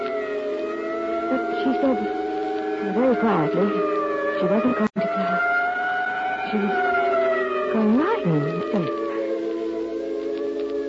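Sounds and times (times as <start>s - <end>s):
ambulance siren with a steady sustained wail: 0.0s - 10.8s
speech: 1.3s - 2.2s, 2.8s - 5.5s, 6.5s - 6.9s, 7.8s - 9.1s.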